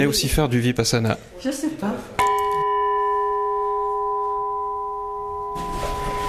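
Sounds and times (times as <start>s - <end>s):
speech: 0.0s - 2.2s
Burmese gong being struck: 2.2s - 6.2s.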